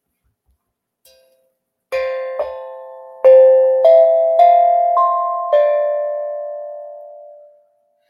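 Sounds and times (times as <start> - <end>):
tongue drum playing slow gentle struck notes: 1.9 - 6.5.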